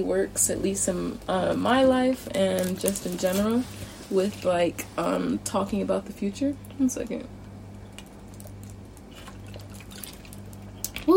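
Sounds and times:
speech: 0.0 - 7.4
low hum: 0.0 - 11.1
swallowing sounds: 7.8 - 11.1
person sipping water: 7.9 - 11.0.

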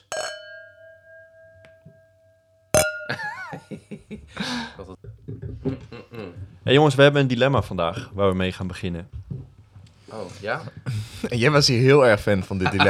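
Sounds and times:
sparkling wine glasses clinking in a toast: 0.0 - 3.7
people laughing: 3.1 - 6.6, 12.2 - 12.8
speech: 4.3 - 5.0, 5.6 - 9.2, 10.1 - 12.8.

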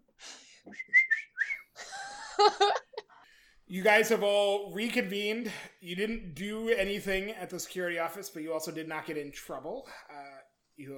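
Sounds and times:
person whistling to get attention of a group: 0.6 - 1.8
speech: 2.4 - 2.8, 3.7 - 10.2, 10.8 - 10.9.

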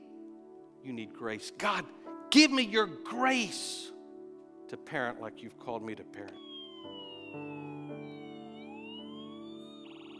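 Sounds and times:
speech: 0.8 - 4.0, 4.7 - 6.5
ambulance siren wailing outside: 6.3 - 10.1.

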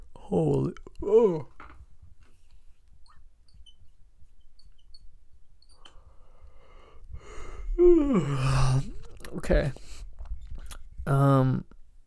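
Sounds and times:
speech: 0.3 - 1.5
long breathy yawn: 7.3 - 9.1.

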